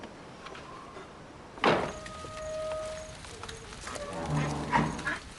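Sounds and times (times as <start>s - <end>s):
short scraping squeal of window sliding: 1.8s - 5.2s.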